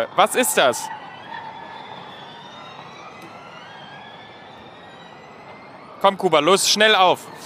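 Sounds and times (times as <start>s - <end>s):
speech: 0.0s - 1.0s, 6.0s - 7.4s
Formula E electric race cars whining past on a track at Tempelhof in Berlin: 0.9s - 6.0s.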